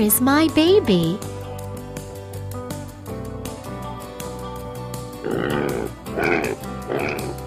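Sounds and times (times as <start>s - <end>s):
speech: 0.0s - 1.3s
light music: 0.0s - 7.4s
pig oinking and grunting: 5.2s - 7.4s.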